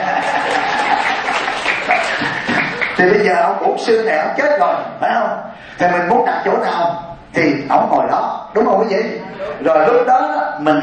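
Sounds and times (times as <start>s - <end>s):
laughter: 0.0s - 3.0s, 9.1s - 10.1s
audience applauding: 0.0s - 3.2s
speech: 3.0s - 10.8s.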